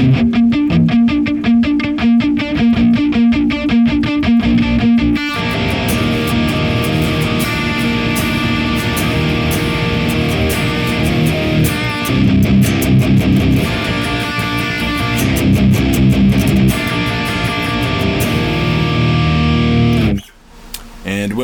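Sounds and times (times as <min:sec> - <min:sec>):
loud heavily distorted electric guitar through a stereo amp simulator with impulse response: 0:00.0 - 0:21.1.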